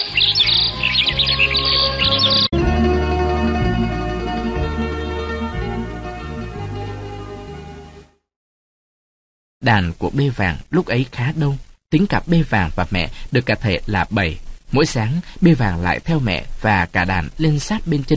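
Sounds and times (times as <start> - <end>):
birds chirping and trilling at dawn at the edge of a forest: 0.0 - 2.5
steady musical backdrop: 0.0 - 8.3
speech: 9.6 - 18.1.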